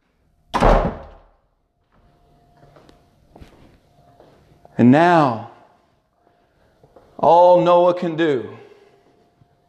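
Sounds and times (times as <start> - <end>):
heavy door slamming shut: 0.5 - 1.3
shuffling: 1.8 - 9.6
speech: 4.8 - 5.5, 7.2 - 8.6.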